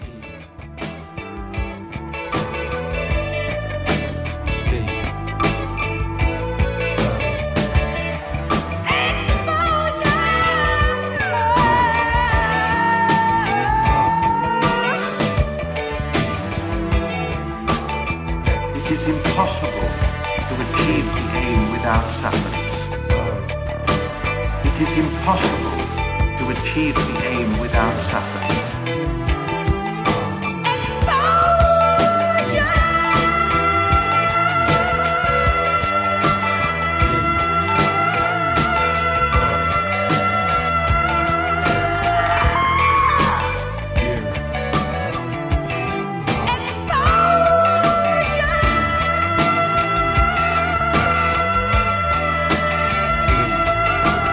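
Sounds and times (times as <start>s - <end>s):
rock music with percussion and guitar: 0.0s - 54.3s.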